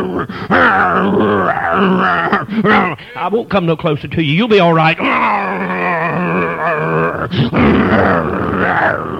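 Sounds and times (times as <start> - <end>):
man imitating a wolf dog growl: 0.0 - 3.0, 4.8 - 9.1
speech: 0.2 - 5.8, 6.4 - 9.1.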